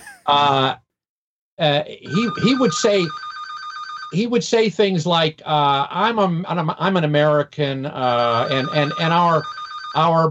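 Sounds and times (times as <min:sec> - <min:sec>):
speech: 0:00.3 - 0:00.8, 0:01.6 - 0:03.3, 0:04.1 - 0:10.2
telephone ringing with a steady electronic tone: 0:02.1 - 0:04.2, 0:08.2 - 0:10.2.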